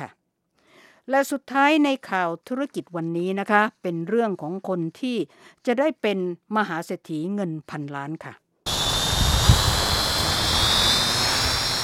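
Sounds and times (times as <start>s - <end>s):
speech: 1.1s - 8.4s
remote-controlled toy helicopter buzzing: 8.7s - 11.8s.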